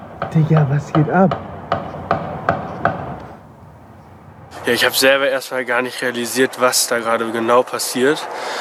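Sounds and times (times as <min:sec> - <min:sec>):
gunshots echoing at night in a town: 0:00.0 - 0:04.6
steady hum: 0:00.0 - 0:05.1
speech: 0:00.3 - 0:01.5, 0:04.7 - 0:08.5.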